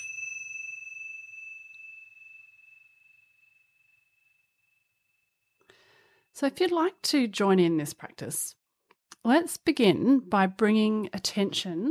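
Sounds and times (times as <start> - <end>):
single meditation bell struck: 0.0 - 5.2
speech: 6.4 - 8.6, 9.2 - 11.8.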